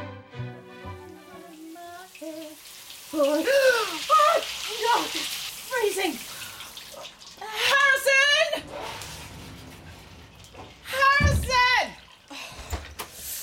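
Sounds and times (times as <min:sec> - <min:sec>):
water running from a shower or tap as hair is washed: 0:00.4 - 0:13.4
person exclaiming and gasping as the water goes cold: 0:03.2 - 0:04.4.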